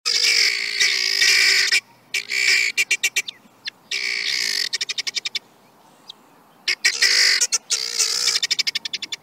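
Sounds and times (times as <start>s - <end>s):
helmeted guineafowl calling: 0.1s - 9.2s.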